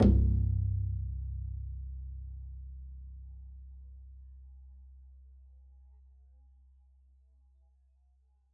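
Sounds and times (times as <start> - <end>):
double bass pizzicato on C1: 0.0 - 3.0.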